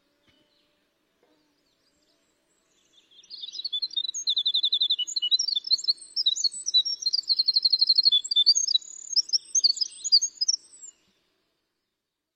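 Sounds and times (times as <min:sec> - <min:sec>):
winter wren singing flute-like song: 0:02.7 - 0:11.0.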